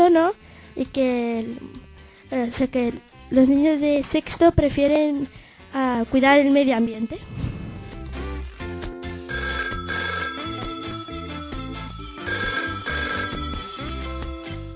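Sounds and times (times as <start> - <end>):
speech: 0.2 - 7.4
telephone ringing with a bright melodic ring tone: 9.3 - 14.7.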